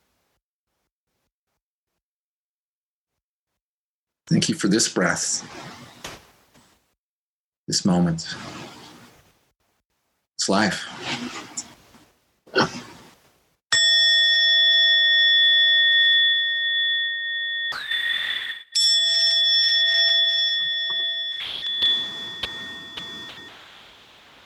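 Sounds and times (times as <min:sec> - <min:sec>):
speech: 0:04.3 - 0:05.7, 0:07.7 - 0:08.6, 0:10.4 - 0:11.4
struck bell ringing with shimmering resonance: 0:13.7 - 0:24.0.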